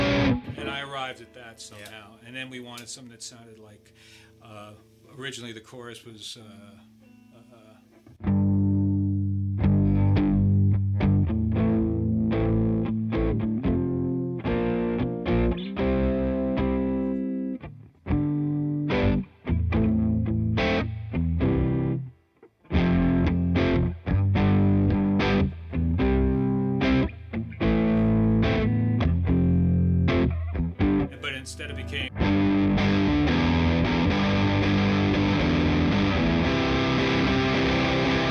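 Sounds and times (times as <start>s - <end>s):
heavily distorted electric guitar playing sustained chords through effects: 0.0s - 1.1s, 7.1s - 22.1s, 22.7s - 38.2s
speech: 1.0s - 7.0s.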